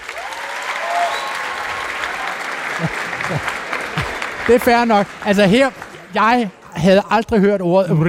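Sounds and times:
faint crowd voices and whoops: 0.0 - 4.2
live audience applause: 0.0 - 6.6
laughter: 2.6 - 4.7
speech: 2.8 - 3.5, 4.5 - 8.0.

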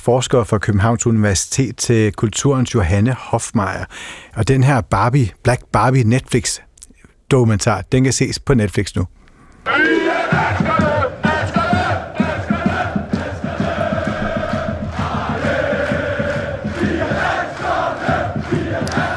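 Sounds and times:
speech: 0.0 - 6.7, 7.3 - 10.7
crowd of football fans chanting and singing in German streets: 9.7 - 19.1.

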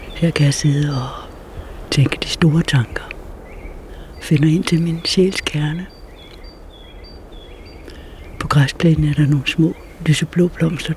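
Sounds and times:
ambient hiss: 0.0 - 10.9
birds chirping outdoors: 0.0 - 10.9
speech: 0.2 - 1.2, 2.0 - 3.1, 4.2 - 5.9, 8.5 - 10.9.

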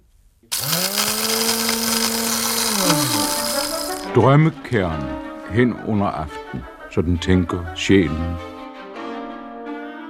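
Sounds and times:
blender running with high motor whine: 0.5 - 4.1
speech: 4.2 - 8.5.

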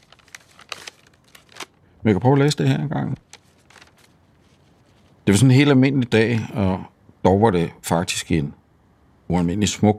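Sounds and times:
paper letter crinkling as it is unfolded and handled: 0.0 - 5.2
speech: 2.0 - 3.3, 5.3 - 8.6, 9.3 - 9.9.

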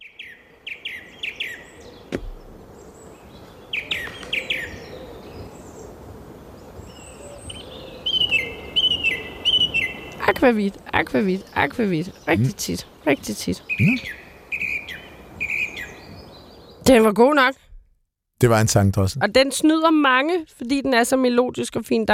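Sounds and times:
song thrush singing: 0.0 - 17.2
steady outdoor hiss: 0.1 - 17.6, 18.4 - 21.2
speech: 10.4 - 14.2, 16.8 - 17.6, 18.4 - 22.1.

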